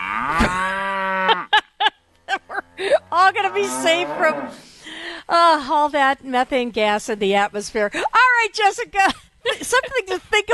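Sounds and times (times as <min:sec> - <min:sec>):
cow mooing: 0:00.0 - 0:01.5, 0:02.8 - 0:04.6
speech: 0:03.4 - 0:04.7, 0:05.3 - 0:10.5.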